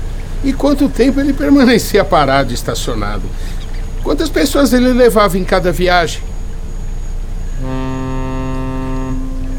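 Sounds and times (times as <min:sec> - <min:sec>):
ferry engine rumble: 0:00.0 - 0:09.5
water noise: 0:00.0 - 0:09.5
speech: 0:00.4 - 0:06.3
deep ferry horn blast signaling arrival: 0:07.6 - 0:09.5.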